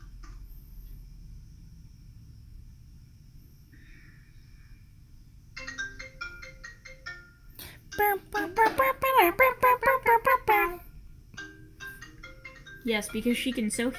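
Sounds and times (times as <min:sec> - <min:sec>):
phone ringtone of an incoming call: 0:05.6 - 0:10.7, 0:11.4 - 0:13.9
speech: 0:12.9 - 0:13.9.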